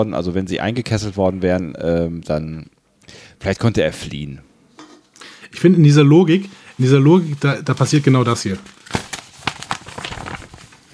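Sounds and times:
speech: 0.0 - 4.5, 5.5 - 9.0
paper script pages rustling and crinkling: 6.5 - 10.9.

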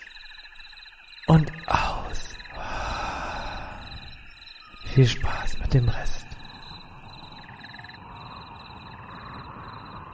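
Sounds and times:
speech: 1.3 - 1.8, 5.0 - 6.2
person exhaling deeply: 2.6 - 4.2.

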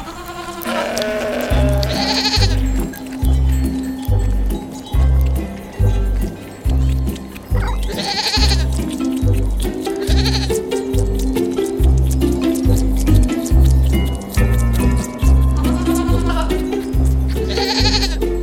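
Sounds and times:
goat bleating: 0.0 - 3.0, 7.6 - 10.8, 14.5 - 18.3
thumping rhythmic beat: 1.3 - 18.4.

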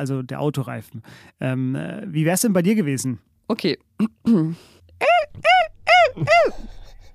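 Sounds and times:
speech: 0.0 - 6.8
human voice imitating bearded vulture squawking calls: 4.0 - 6.8
laughter: 5.1 - 7.1.

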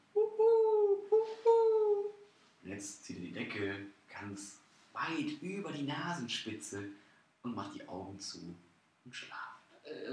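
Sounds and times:
person imitating owl hoots: 0.0 - 2.2, 9.8 - 10.1
speech: 2.7 - 10.1.

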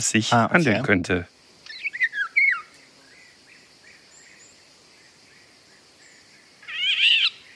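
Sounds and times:
speech: 0.0 - 1.4
Eurasian golden oriole harsh squeaky call: 1.6 - 2.7, 6.6 - 7.4
Eurasian golden oriole singing fluty whistled phrase: 1.6 - 3.3, 6.1 - 7.5.

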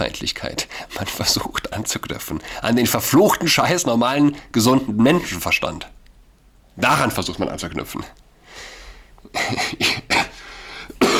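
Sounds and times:
speech: 0.1 - 5.9, 6.8 - 8.7, 9.3 - 10.2
harsh coughing: 9.3 - 11.1.

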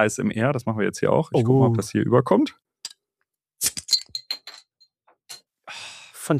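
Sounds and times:
speech: 0.0 - 2.7
glass bottle of alcohol-free Helles beer being opened: 3.6 - 4.7
bright glassy clinks: 3.6 - 5.5.

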